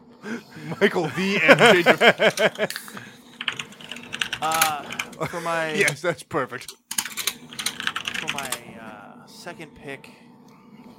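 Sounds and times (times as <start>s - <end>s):
speech: 0.2s - 3.1s, 4.4s - 6.8s, 8.3s - 8.7s, 9.4s - 10.2s
laughter: 0.3s - 3.2s, 4.4s - 6.0s
aggressive typing on a computer keyboard: 3.4s - 5.2s, 6.7s - 8.6s.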